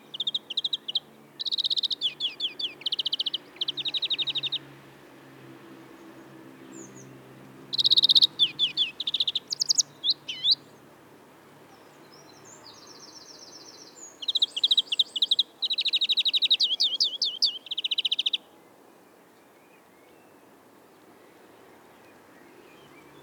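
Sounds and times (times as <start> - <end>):
European greenfinch (Chloris chloris) singing: 0.0 - 4.8, 6.6 - 10.8, 12.0 - 18.5.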